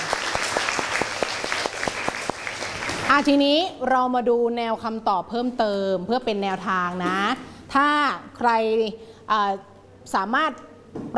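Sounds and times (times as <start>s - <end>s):
group of students clapping in class: 0.0s - 3.1s
speech: 3.1s - 11.1s.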